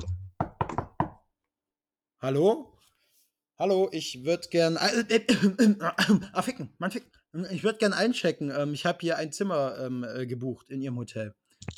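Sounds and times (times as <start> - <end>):
knocking on a door: 0.4 - 1.2
speech: 2.2 - 2.7, 3.6 - 11.7.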